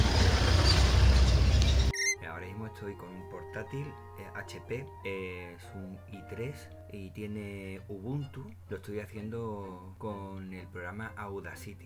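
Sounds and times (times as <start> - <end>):
cars passing outdoors: 0.0 - 1.9
faint bird chirps: 1.6 - 2.2
speech: 2.8 - 11.8.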